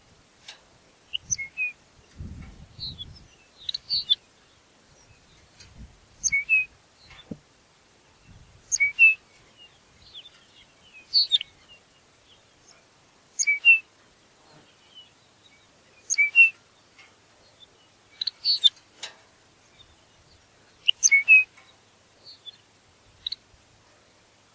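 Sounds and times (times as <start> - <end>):
Lapland longspur Calcarius lapponicus calling: 1.1 - 2.2, 2.8 - 4.3, 5.0 - 7.4, 8.6 - 11.8, 13.4 - 13.9, 15.9 - 19.1, 19.8 - 22.6.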